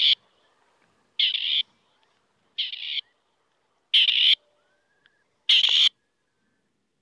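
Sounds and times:
male grey partridge calling: 0:00.0 - 0:00.2, 0:01.2 - 0:01.7, 0:02.6 - 0:03.2, 0:04.0 - 0:06.0.

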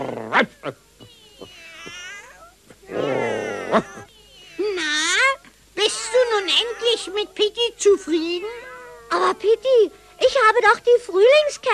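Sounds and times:
many cats on a garden fence meowing and caterwauling: 0:00.0 - 0:05.2, 0:05.8 - 0:10.9
speech: 0:00.4 - 0:00.9, 0:08.0 - 0:11.7.

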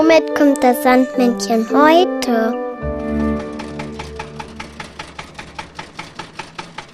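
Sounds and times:
speech: 0:00.1 - 0:02.6
tractor engine chugging: 0:03.4 - 0:06.8.

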